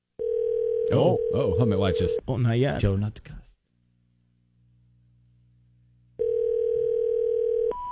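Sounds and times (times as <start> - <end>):
telephone dial tone while placing a call: 0.2 - 1.3, 6.2 - 7.9
speech: 0.9 - 3.4.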